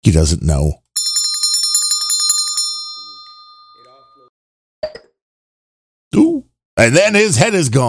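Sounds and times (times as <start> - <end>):
speech: 0.1 - 0.8, 6.8 - 7.8
loud bell ringing with rapid rattling strikes: 1.0 - 4.3.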